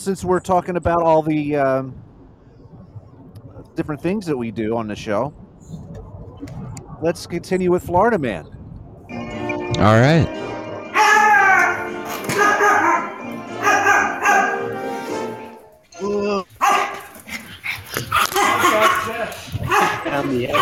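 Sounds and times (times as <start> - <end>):
speech: 0.0 - 2.1, 3.8 - 5.8, 7.0 - 8.6, 9.7 - 10.6, 20.1 - 20.5
dog barking and yipping with whining barks: 11.0 - 14.9, 16.6 - 20.5.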